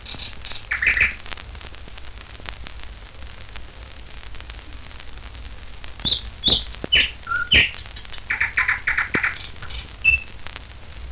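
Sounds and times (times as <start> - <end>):
nightingale singing high whistles, low pure note, sharp clicks and rattling notes: 0.0 - 1.3, 6.0 - 10.4.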